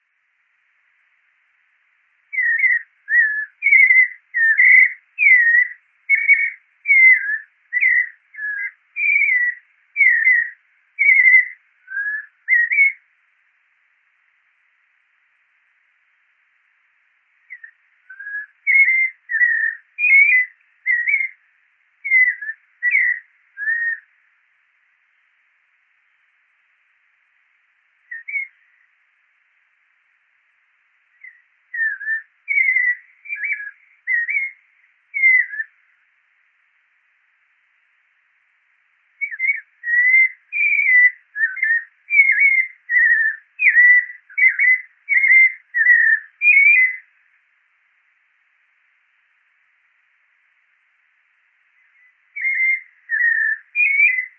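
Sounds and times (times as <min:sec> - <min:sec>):
Turdus albicollis white-necked thrush calling: 0:02.3 - 0:13.0, 0:17.5 - 0:24.1, 0:28.1 - 0:28.8, 0:31.2 - 0:35.8, 0:39.2 - 0:47.1, 0:51.8 - 0:54.3.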